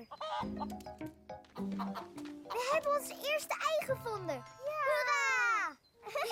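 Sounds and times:
chickens clucking: 0.0 - 3.2
speech: 0.0 - 5.1.

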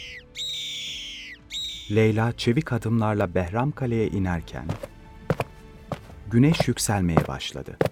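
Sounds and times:
bird of prey diving into a valley crying: 0.0 - 2.0
speech: 1.9 - 5.0, 6.3 - 7.9.

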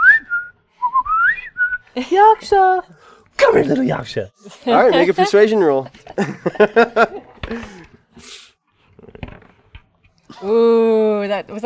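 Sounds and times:
person whistling to coax an animal out of a bush: 0.0 - 1.9
speech: 2.0 - 7.7, 10.4 - 11.6
laughter: 4.8 - 7.9.

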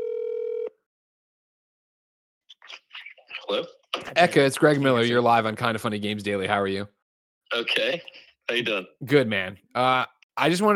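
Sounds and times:
phone ringback tone on an outgoing call: 0.0 - 0.7
speech: 2.6 - 10.7.

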